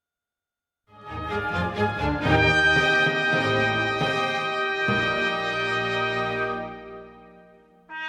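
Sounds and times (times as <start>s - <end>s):
cadenza: 1.0s - 7.9s.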